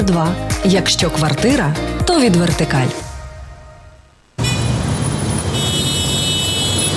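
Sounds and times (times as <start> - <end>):
speech: 0.0 - 3.0
dense loud city traffic noise with engine rumble: 3.3 - 6.9
sustained car horn tones: 4.4 - 6.9.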